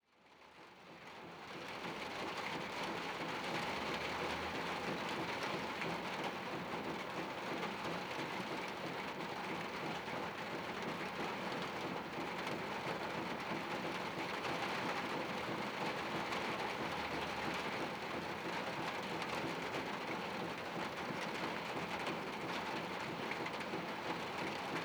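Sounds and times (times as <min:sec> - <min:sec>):
rain on a sheet metal roof heard from inside a bathroom: 0:00.4 - 0:24.8.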